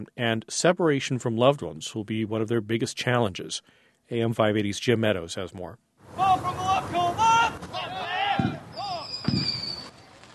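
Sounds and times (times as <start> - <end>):
speech: 0.0 - 7.2
crowd voices and cheering: 6.1 - 9.2
deep fireworks booms: 8.4 - 10.0.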